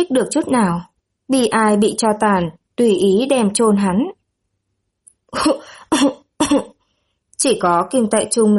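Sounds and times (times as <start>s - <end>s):
speech: 0.0s - 4.2s, 5.3s - 6.7s, 7.4s - 8.5s
person giving short dry coughs: 5.4s - 6.7s.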